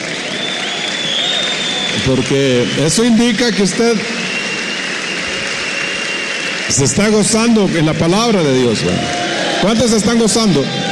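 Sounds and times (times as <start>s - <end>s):
audience applause: 0.0s - 10.8s
speech: 2.0s - 4.1s, 6.7s - 10.8s.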